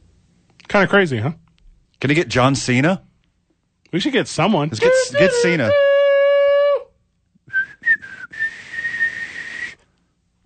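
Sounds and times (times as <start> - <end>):
speech: 0.7 - 1.4, 2.0 - 3.1, 3.9 - 5.8
weak breathy human whistling: 7.5 - 10.0.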